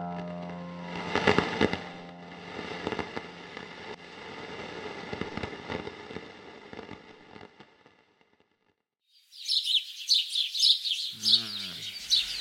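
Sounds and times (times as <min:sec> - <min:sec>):
crackling pops: 0:00.2 - 0:08.5
alarm clock playing recorded birdsong: 0:09.2 - 0:12.3.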